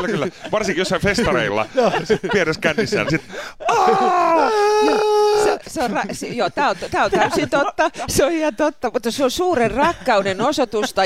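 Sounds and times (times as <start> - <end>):
laughter: 0.0 - 8.4
speech: 0.0 - 11.0
person imitating excited high-pitched shrieking of women greeting: 3.6 - 5.7.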